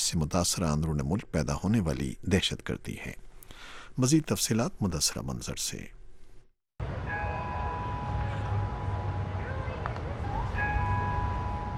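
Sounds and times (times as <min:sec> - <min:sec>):
speech: 0:00.0 - 0:06.0
church bells ringing in Orlando: 0:06.8 - 0:11.7.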